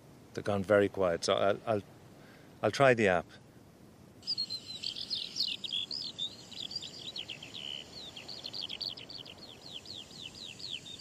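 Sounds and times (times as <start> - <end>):
faint hiss: 0.0 - 10.9
speech: 0.4 - 2.0, 2.6 - 3.4
small bird singing among sand dunes: 4.2 - 10.9.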